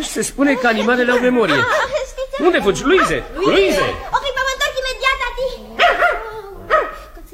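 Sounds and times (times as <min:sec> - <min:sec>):
speech: 0:00.0 - 0:04.2
laughter: 0:00.0 - 0:04.6
dog barking: 0:00.6 - 0:04.1, 0:05.7 - 0:07.2
dog yelping: 0:00.6 - 0:07.2.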